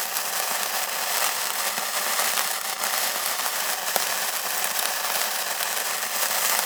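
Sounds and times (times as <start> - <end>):
sparklers burning: 0.0 - 6.6.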